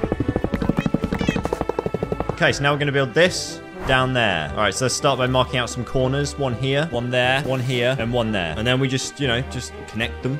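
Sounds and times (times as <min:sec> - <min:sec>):
video game cats meowing after an explosion: 0:00.6 - 0:01.5
speech: 0:02.4 - 0:10.3.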